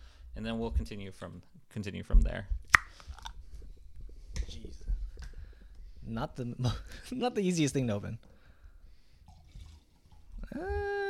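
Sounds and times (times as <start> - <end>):
speech: 0.4 - 2.9, 6.1 - 8.3, 10.5 - 10.9
cranberry juice pouring into a glass: 9.2 - 10.4.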